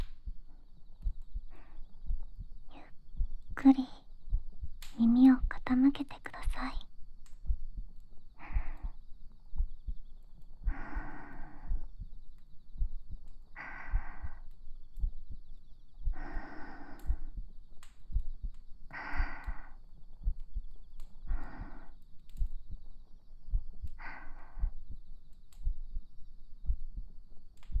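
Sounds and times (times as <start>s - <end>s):
human heartbeat heard through the chest: 0.0s - 27.7s
slow airy breaths: 0.2s - 3.3s, 8.2s - 26.8s
speech: 3.6s - 3.9s.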